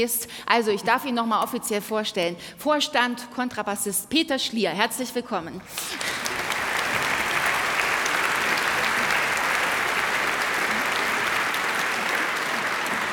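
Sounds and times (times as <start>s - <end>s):
speech: 0.0s - 6.4s
audience applauding: 5.8s - 13.1s.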